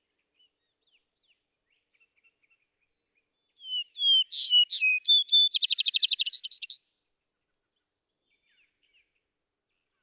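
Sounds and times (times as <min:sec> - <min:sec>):
vesper sparrow song: 0:03.6 - 0:06.8.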